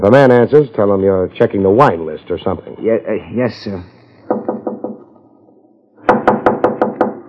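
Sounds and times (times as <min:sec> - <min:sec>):
speech: 0:00.0 - 0:04.0
knocking on a door: 0:04.3 - 0:05.0, 0:06.1 - 0:07.2.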